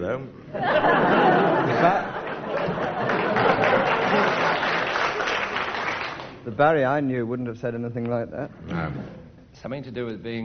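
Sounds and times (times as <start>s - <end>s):
speech: 0.0s - 2.0s, 6.5s - 10.4s
laughter: 0.5s - 5.4s
crowd applauding: 1.7s - 6.4s.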